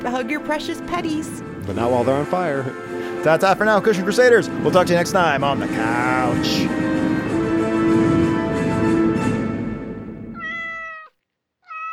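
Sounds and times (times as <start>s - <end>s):
speech: 0.0s - 6.9s
rough noise: 1.2s - 10.7s
cat meowing: 10.4s - 11.9s.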